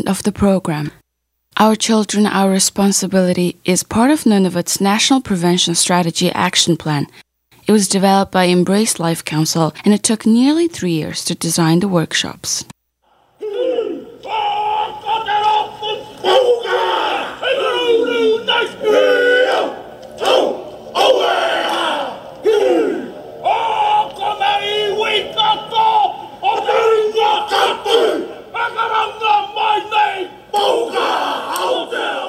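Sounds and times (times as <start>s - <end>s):
speech: 0.1s - 1.0s, 1.6s - 12.8s
many men chanting and shouting in unison in a haka war dance: 13.1s - 32.2s.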